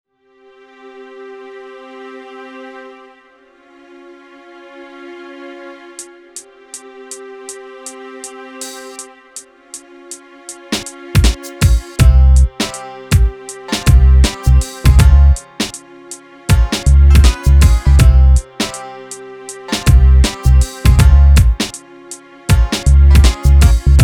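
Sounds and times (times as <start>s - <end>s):
exotica hip hop beat in C minor: 6.3s - 24.0s.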